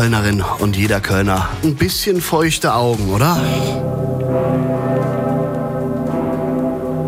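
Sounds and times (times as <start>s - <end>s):
speech: 0.0s - 4.1s
great bell of Cologne Cathedral tolling: 3.3s - 7.0s.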